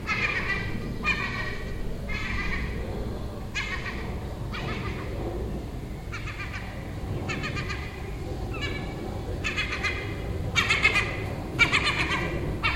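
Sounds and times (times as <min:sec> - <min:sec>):
gull calling from a neighbouring roof: 0:00.0 - 0:02.9, 0:03.5 - 0:05.2, 0:06.0 - 0:12.7
low background noise: 0:00.0 - 0:12.7.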